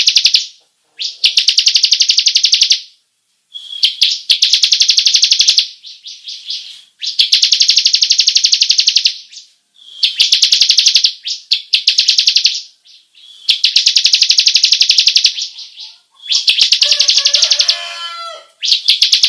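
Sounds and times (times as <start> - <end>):
Bar-winged prinia long rolling trill song: 0.0 - 19.2.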